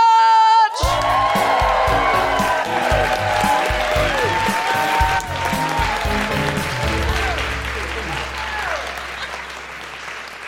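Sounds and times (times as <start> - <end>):
audience cheering and whooping: 0.6 - 10.4
high sustained whoop: 0.8 - 7.5.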